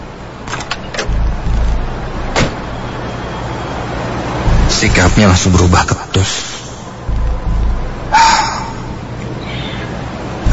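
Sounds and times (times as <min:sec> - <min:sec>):
steady vehicle noise: 0:00.0 - 0:10.5
low rumble: 0:01.0 - 0:03.0, 0:04.4 - 0:09.1
car door closing: 0:02.3 - 0:02.7
speech: 0:04.8 - 0:06.6.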